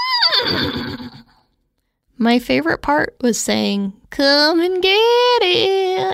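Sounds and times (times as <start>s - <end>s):
person vocally imitating a horse whinny: 0.0s - 1.4s
speech: 0.4s - 1.3s, 2.2s - 6.1s.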